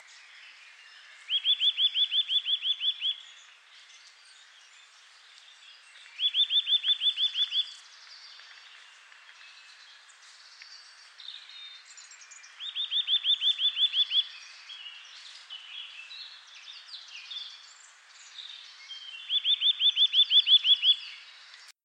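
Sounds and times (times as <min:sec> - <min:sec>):
Eurasian nuthatch Sitta europaea calling: 0:01.2 - 0:03.3, 0:06.1 - 0:07.8, 0:12.5 - 0:16.0, 0:19.0 - 0:21.2.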